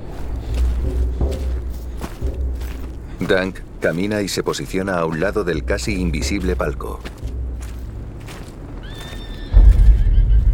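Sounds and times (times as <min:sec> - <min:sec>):
heavy low rumble: 0:00.0 - 0:08.8, 0:09.5 - 0:10.5
speech: 0:03.3 - 0:07.2
horse whinnying: 0:08.8 - 0:10.5.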